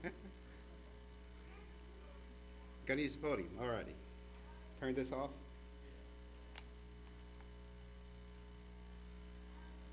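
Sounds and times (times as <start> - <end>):
speech: 0.0 - 0.4, 2.9 - 4.1, 4.8 - 5.5
faint static hiss from the sound system: 0.0 - 9.9
steady electrical hum from the sound system: 0.0 - 9.9
soft clicks: 6.5 - 7.5.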